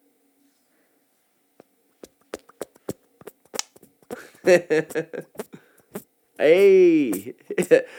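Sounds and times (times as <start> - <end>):
squelchy pops made by pressing palms together: 2.0 - 4.4
laughter: 4.2 - 5.6, 7.2 - 7.9
speech: 4.4 - 5.4, 6.4 - 7.9.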